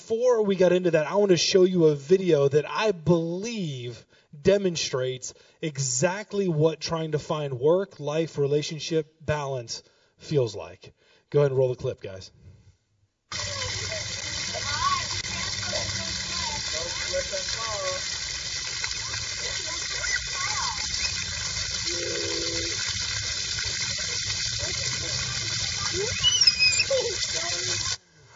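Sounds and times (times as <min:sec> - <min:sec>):
speech: 0:00.1 - 0:12.4, 0:13.3 - 0:13.7
soft voices murmuring: 0:13.3 - 0:28.0
water running from a tap: 0:13.3 - 0:28.0.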